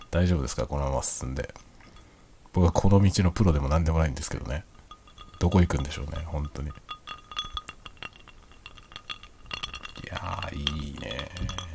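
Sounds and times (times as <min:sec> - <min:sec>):
speech: 0:00.1 - 0:01.7, 0:02.6 - 0:04.7, 0:05.4 - 0:06.9
ice cubes clinking against a glass: 0:04.8 - 0:11.7.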